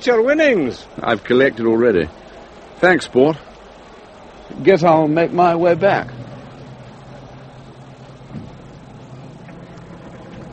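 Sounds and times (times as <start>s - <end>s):
speech: 0.0s - 2.2s, 2.8s - 3.5s, 4.5s - 6.3s
gritty road noise on a dirt track: 0.0s - 10.5s
car engine rumbling on a dirt track: 3.4s - 10.5s.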